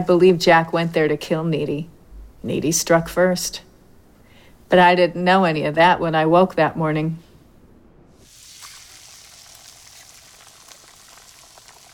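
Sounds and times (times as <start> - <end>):
speech: 0.0 - 3.7, 4.7 - 7.2
eggs and bacon sizzling in a frying pan: 8.2 - 11.9
hot fat crackling and popping: 8.2 - 11.9.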